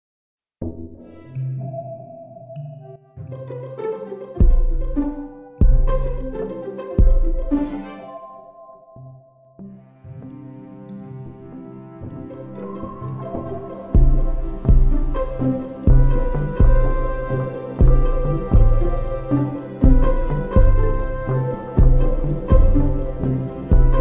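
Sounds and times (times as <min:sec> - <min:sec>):
pizzicato dance music: 0:03.3 - 0:08.2, 0:12.3 - 0:23.9.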